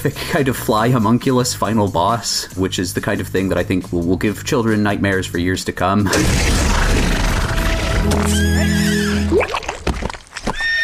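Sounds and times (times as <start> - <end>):
speech: 0.0 - 6.6
horse whinnying: 7.3 - 9.6, 10.4 - 10.8.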